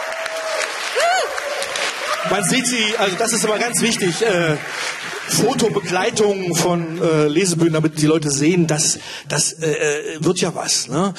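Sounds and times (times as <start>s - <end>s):
short rising-and-falling voiced cheer: 0.0s - 7.0s
audience clapping at a literary reading-stage event: 0.0s - 8.0s
speech: 2.2s - 11.1s.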